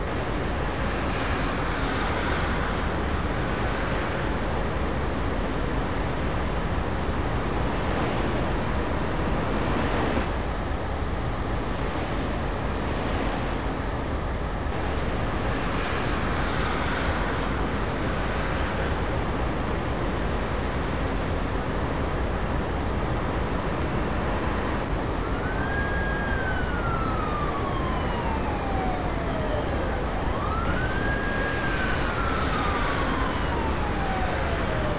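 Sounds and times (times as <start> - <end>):
city ambience: 0.0 - 34.9.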